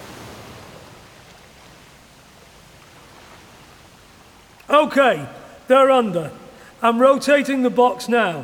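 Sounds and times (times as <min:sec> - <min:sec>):
water pouring through window openings into a mock aircraft cabin: 0:00.0 - 0:08.4
speech: 0:04.7 - 0:08.4.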